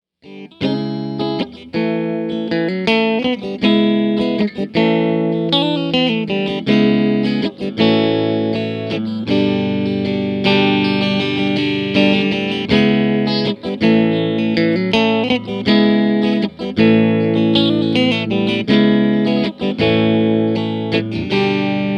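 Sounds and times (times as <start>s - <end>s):
clean guitar amp channel tone: 0.2s - 21.9s.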